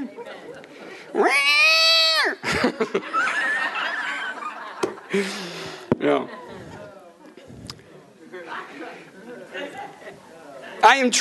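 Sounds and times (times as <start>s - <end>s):
crowd laughing: 0.0s - 1.1s, 2.4s - 7.5s, 8.2s - 10.5s
crowd murmuring: 0.0s - 10.8s
speech: 1.1s - 1.6s, 2.8s - 3.3s, 5.1s - 6.4s, 10.8s - 11.1s
voice imitating a cat meowing: 1.2s - 2.4s.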